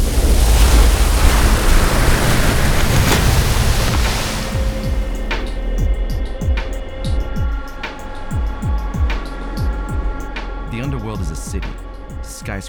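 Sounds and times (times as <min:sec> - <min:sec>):
churning rush of river water: 0:00.0 - 0:12.6
steady deep thuds: 0:00.0 - 0:12.6
low eerie drone: 0:04.5 - 0:12.5.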